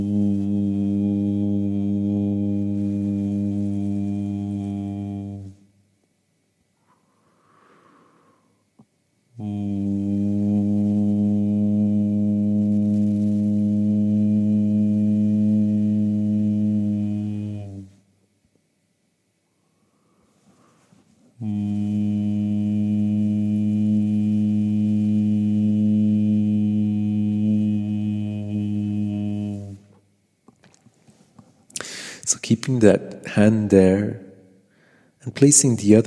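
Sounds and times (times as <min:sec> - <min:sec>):
person humming long steady low notes: 0:00.0 - 0:05.7, 0:09.3 - 0:18.0, 0:21.4 - 0:32.6
speech: 0:32.6 - 0:34.2, 0:35.2 - 0:36.0.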